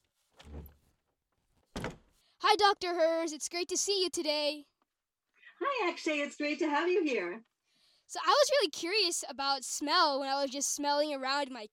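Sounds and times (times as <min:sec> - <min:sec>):
door opening with a low rumbling thud and rattle: 0:00.4 - 0:00.8, 0:01.6 - 0:02.1
door knock or clunk as it swings or latches: 0:01.7 - 0:02.1
speech: 0:02.5 - 0:04.7, 0:05.6 - 0:07.5, 0:08.1 - 0:11.7.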